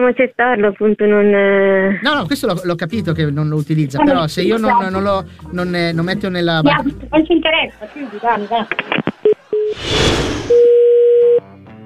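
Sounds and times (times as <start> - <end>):
speech: 0.0 - 9.1
laughter: 7.5 - 9.6
steady telephone busy tone after a dropped call: 9.5 - 9.8, 10.5 - 11.4
short telephone line beeps after a dropped call: 10.5 - 11.4.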